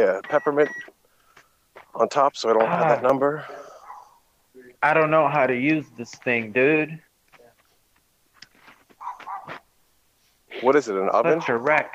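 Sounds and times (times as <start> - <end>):
speech: 0.0 - 1.0, 2.0 - 3.6, 4.8 - 7.0, 10.6 - 11.9
dog barking outside: 3.6 - 4.2, 9.0 - 9.6, 11.2 - 11.9.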